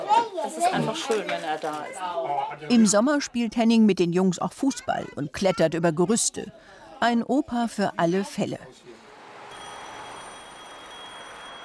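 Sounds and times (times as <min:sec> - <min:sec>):
speech: 0:00.6 - 0:09.0
telephone ringing: 0:09.5 - 0:11.6.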